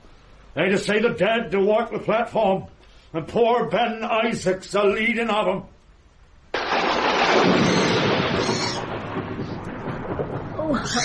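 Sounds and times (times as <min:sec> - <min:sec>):
speech: 0:00.6 - 0:05.7, 0:10.7 - 0:11.0
thunder crack: 0:06.6 - 0:11.0.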